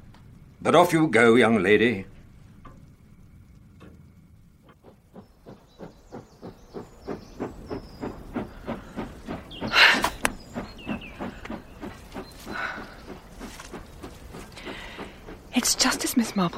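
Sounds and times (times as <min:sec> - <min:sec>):
speech: 0:00.6 - 0:02.1
train wheels clacking over rail joints on a curve: 0:04.8 - 0:16.5.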